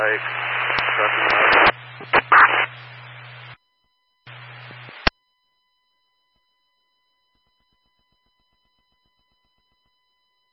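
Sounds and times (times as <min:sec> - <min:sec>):
speech: 0:00.0 - 0:02.3
garbled radio transmission crackling with heavy static: 0:00.0 - 0:03.6, 0:04.3 - 0:05.1
steady low hum: 0:00.0 - 0:03.6.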